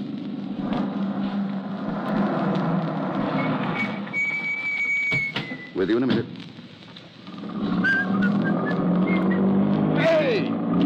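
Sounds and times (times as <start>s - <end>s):
car engine starting: 0.0s - 6.3s, 7.2s - 10.8s
rising whistle-like whine: 3.2s - 5.9s, 7.4s - 9.8s
speech: 5.8s - 6.5s.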